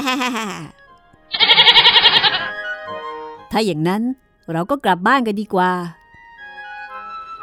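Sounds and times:
speech: 0.0s - 0.8s, 3.5s - 6.0s
person imitating a goat bleat: 1.3s - 2.5s.

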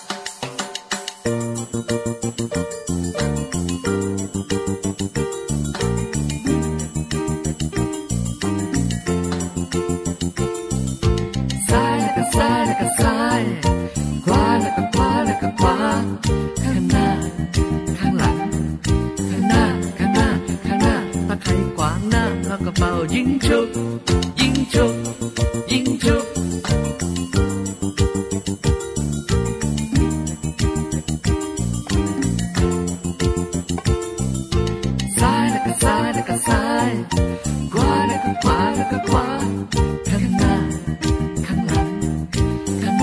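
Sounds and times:
bright upbeat song: 0.0s - 34.3s, 35.0s - 43.0s
person singing over the beat: 11.6s - 18.6s, 19.2s - 26.6s, 35.1s - 43.0s.

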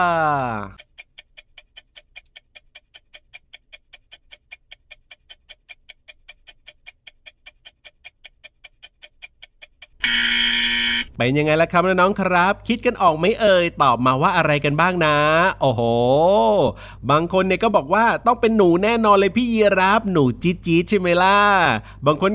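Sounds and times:
speech: 0.0s - 0.9s, 11.2s - 22.3s
countdown timer clock ticking: 0.7s - 10.1s.

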